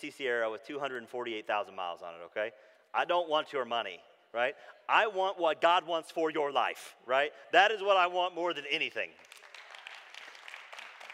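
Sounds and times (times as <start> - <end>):
speech: 0.0 - 9.3
crowd applauding: 9.2 - 11.1.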